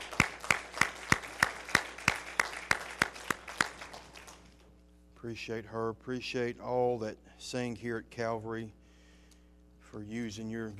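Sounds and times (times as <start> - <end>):
sharp evenly spaced claps: 0.0 - 4.7
speech: 5.2 - 8.8, 10.0 - 10.7.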